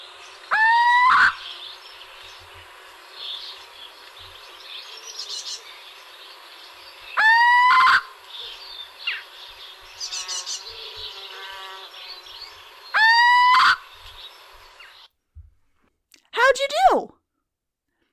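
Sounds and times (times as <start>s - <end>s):
little owl nasal upward-inflected calls: 0.5s - 1.6s, 7.2s - 9.3s, 12.9s - 14.0s.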